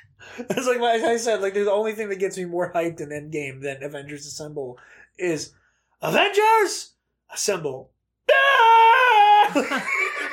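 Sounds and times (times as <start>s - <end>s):
speech: 0.4s - 8.9s, 9.5s - 10.2s
person imitating a blood-curdling battle scream: 8.3s - 9.9s.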